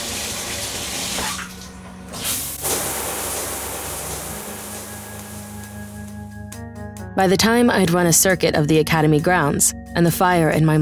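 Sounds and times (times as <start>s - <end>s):
shower water running: 0.0s - 6.2s
speech: 7.2s - 10.8s.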